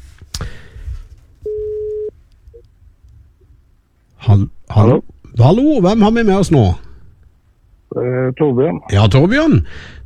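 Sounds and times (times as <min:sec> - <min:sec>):
outgoing phone call ringing tone: 0:01.5 - 0:02.1
speech: 0:04.4 - 0:06.8, 0:07.9 - 0:10.0.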